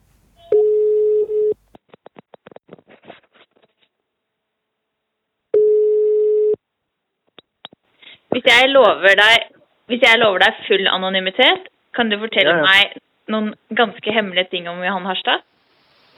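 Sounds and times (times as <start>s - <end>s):
telephone ringback tone: 0.4s - 1.6s, 5.6s - 6.6s
speech: 8.5s - 15.5s.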